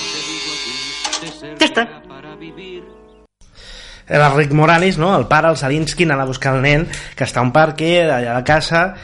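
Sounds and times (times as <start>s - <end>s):
electric buzz of a shaving helmet worn by a father: 0.0s - 1.3s
speech: 1.6s - 3.0s, 4.1s - 9.0s.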